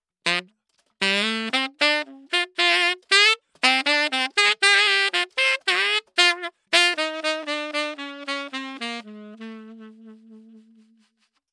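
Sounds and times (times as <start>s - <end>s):
saxophone: 0.2s - 11.4s.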